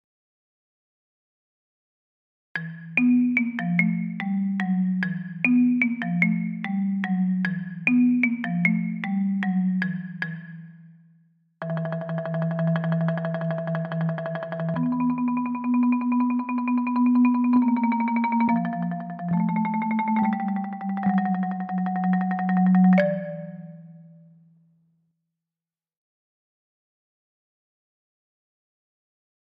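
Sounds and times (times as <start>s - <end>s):
marimba: 2.6s - 10.8s, 11.6s - 24.2s.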